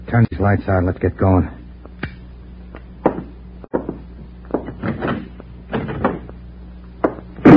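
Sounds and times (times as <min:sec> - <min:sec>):
low steady hum: 0:00.0 - 0:07.5
speech: 0:00.1 - 0:01.6
scuffing knocks and bumps of a door being kicked: 0:03.0 - 0:06.3
door kicked shut: 0:04.6 - 0:06.3, 0:07.0 - 0:07.5.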